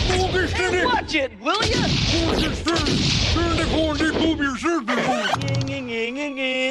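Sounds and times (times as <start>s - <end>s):
speech: 0.1s - 6.6s
gunshots fired at someone: 1.6s - 4.4s.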